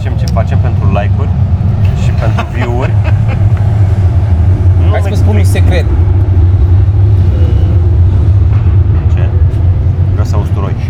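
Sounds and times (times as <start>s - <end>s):
heavy tram rumbling past outside: 0.0s - 10.8s
laughter: 1.8s - 4.1s.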